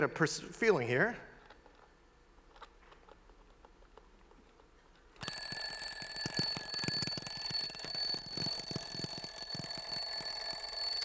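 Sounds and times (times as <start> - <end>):
speech: 0.0 - 1.3
alarm clock bell ringing shrilly: 5.2 - 11.0.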